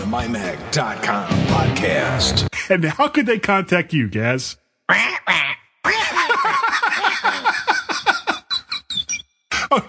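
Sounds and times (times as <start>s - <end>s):
speech: 0.1s - 5.6s
person squawking in a harsh raspy parrot-like voice: 4.9s - 6.2s
laughter: 5.9s - 8.9s, 9.5s - 9.8s.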